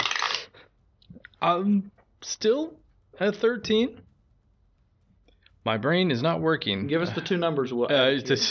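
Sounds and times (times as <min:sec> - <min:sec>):
dice clattering across a hard tabletop: 0:00.0 - 0:00.5
speech: 0:01.4 - 0:04.1, 0:05.6 - 0:08.4.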